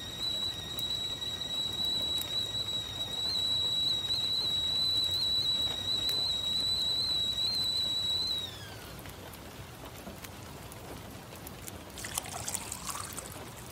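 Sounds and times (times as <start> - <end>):
old kettle whistling on gas stove: 0.0 - 9.3, 12.0 - 13.6
low hiss: 0.0 - 13.6.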